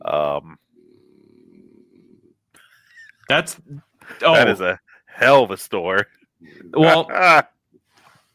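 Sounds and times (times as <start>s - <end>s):
French bulldog snoring: 0.7s - 2.4s
speech: 3.3s - 7.5s.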